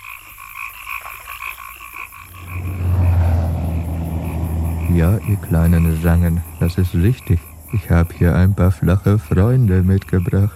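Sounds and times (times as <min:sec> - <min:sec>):
chorus of frogs croaking in rhythmic pulses: 0:00.0 - 0:10.5
loud low engine-like rumble: 0:02.1 - 0:10.5
speech: 0:05.0 - 0:10.5.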